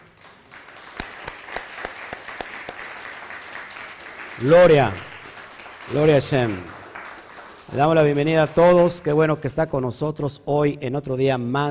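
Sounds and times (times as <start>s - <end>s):
crowd applause: 0.0s - 9.2s
sharp rhythmic claps: 0.0s - 9.3s
speech: 4.4s - 5.1s, 5.9s - 6.8s, 7.7s - 11.7s.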